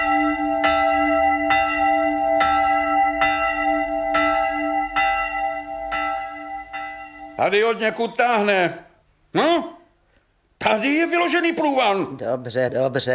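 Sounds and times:
church bell tolling for mass: 0.0s - 8.3s
speech: 7.4s - 9.8s, 10.6s - 13.1s.

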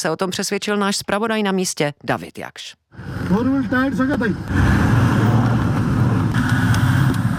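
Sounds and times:
speech: 0.0s - 5.1s
Toyota off-road vehicle engine climbing a steep unpaved mountain road: 3.0s - 7.3s.

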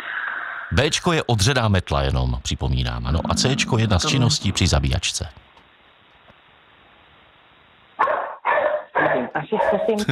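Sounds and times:
speech: 0.7s - 5.4s, 9.9s - 10.1s
dogs barking in a yard: 8.0s - 10.0s.

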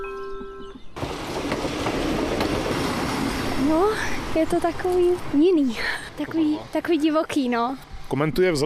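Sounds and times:
train arriving at the railway station in Pacov: 0.0s - 5.4s
speech: 3.7s - 8.6s.

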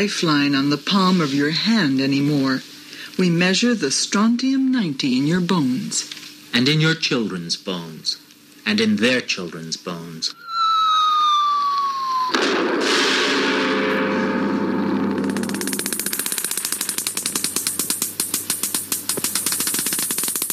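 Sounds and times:
speech: 0.0s - 10.4s
falling whistle: 10.4s - 14.6s
nuclear test explosion: 12.3s - 16.0s.

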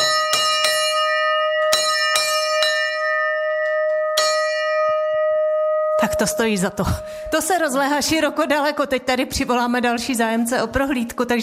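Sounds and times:
forged bell cast from bell bronze ringing at Kozubová: 0.0s - 7.6s
speech: 6.2s - 11.4s.

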